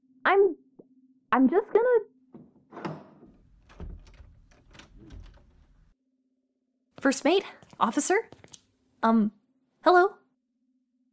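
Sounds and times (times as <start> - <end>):
speech: 0.2 - 0.6, 1.3 - 2.1, 7.0 - 8.4, 9.0 - 10.2
prison door latch clunk: 2.4 - 5.8.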